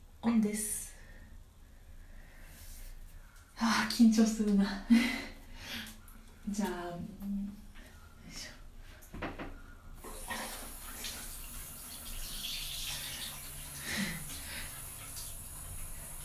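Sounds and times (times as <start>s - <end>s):
speech: 0.2s - 0.9s, 3.6s - 5.2s, 6.5s - 7.6s
shower water running: 10.0s - 16.2s.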